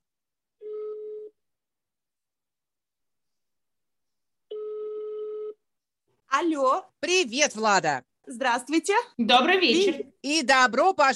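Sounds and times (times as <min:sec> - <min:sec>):
telephone ringback tone of an outgoing call: 0:04.5 - 0:05.6
speech: 0:06.3 - 0:11.1.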